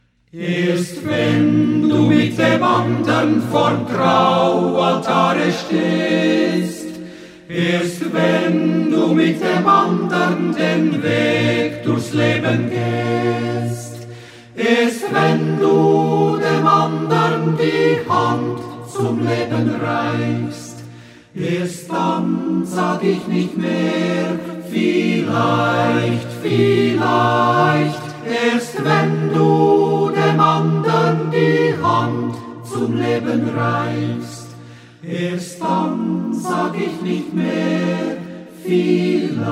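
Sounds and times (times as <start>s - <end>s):
choir singing: 0.2s - 39.4s.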